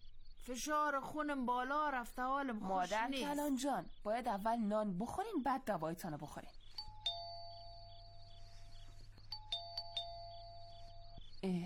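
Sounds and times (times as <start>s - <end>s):
speech: 0.4s - 6.6s
sharp electronic doorbell chimes: 6.7s - 11.6s
doorbell ringing late at night: 6.8s - 8.4s, 9.4s - 11.2s.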